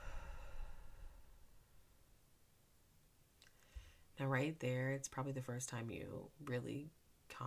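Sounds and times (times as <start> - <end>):
breathy exhale through the mouth: 0.0 - 1.5
speech: 4.2 - 7.4.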